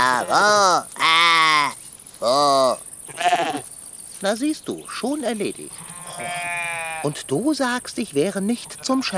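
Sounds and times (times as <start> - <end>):
sheep bleating: 0.0 - 1.8, 3.1 - 3.7, 5.8 - 7.2, 8.5 - 9.1
speech: 0.2 - 1.0, 4.2 - 6.4, 7.0 - 9.1.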